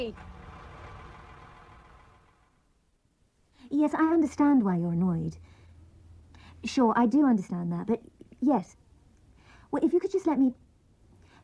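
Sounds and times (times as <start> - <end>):
speech: 0.0 - 0.3, 3.7 - 5.6, 6.6 - 8.8, 9.7 - 10.6
heavy diesel tractor engine idling: 0.0 - 2.8.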